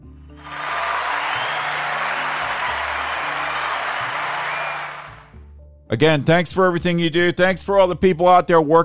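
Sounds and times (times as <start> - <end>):
applause for first responders: 0.4 - 5.3
speech: 5.9 - 8.8.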